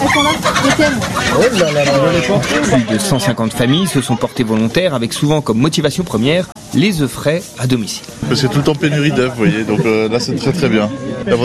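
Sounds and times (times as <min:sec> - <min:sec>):
two laying hens clucking in Mulhouse: 0:00.0 - 0:11.4
speech: 0:00.2 - 0:11.4.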